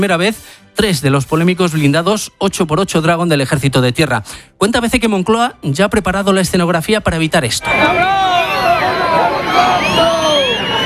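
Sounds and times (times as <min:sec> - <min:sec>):
speech: 0:00.0 - 0:08.5
large crowd booing and jeering at a military parade: 0:07.6 - 0:10.8.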